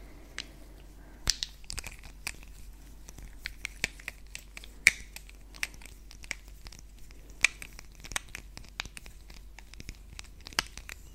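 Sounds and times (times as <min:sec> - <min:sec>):
face brushing with dry bright scratches: 0:00.0 - 0:11.1.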